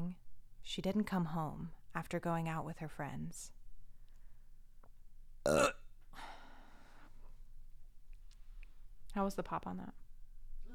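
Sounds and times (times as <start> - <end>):
speech: 0.0 - 3.6, 5.5 - 6.3, 9.2 - 10.0
loud throaty burp: 5.4 - 5.9.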